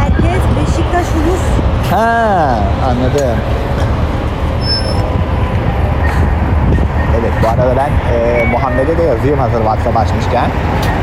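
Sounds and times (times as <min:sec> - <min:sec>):
city bus rumbling: 0:00.0 - 0:11.0
speech: 0:02.0 - 0:03.6, 0:07.4 - 0:11.0.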